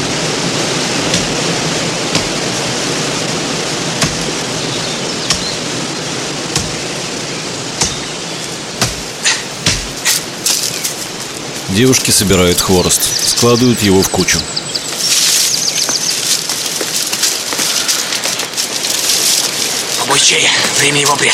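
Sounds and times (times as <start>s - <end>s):
roar of rushing water from a waterfall: 0.0s - 21.3s
wooden knocks of a man chopping a tree: 2.1s - 2.4s, 4.0s - 4.3s, 6.5s - 6.8s, 7.8s - 8.1s, 8.8s - 10.2s
speech: 11.8s - 14.6s, 20.3s - 21.3s.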